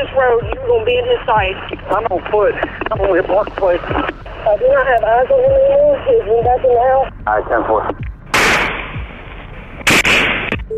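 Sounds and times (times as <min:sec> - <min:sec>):
speech: 0:00.0 - 0:08.0
gunshots fired outside during an active shooting: 0:08.3 - 0:09.0, 0:09.8 - 0:10.6.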